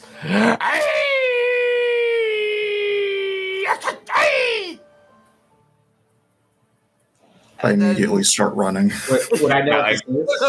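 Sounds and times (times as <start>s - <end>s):
speech: 0.2s - 0.9s, 7.6s - 10.4s
person's voice imitating a creature howl: 0.2s - 4.8s
laughter: 9.0s - 9.7s.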